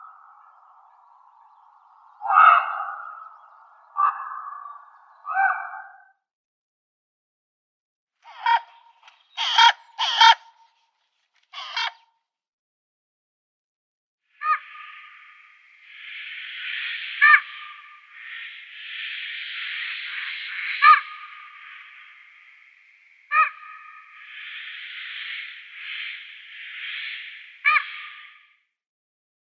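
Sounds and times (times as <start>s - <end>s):
common raven giving varied calls: 0.0s - 6.2s, 8.3s - 10.7s, 11.5s - 12.0s, 14.4s - 28.6s.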